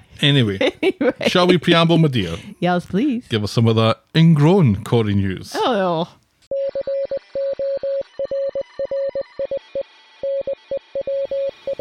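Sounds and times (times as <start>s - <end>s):
speech: 0.2s - 6.2s
steady 700 Hz tone keyed in Morse code: 6.5s - 11.7s.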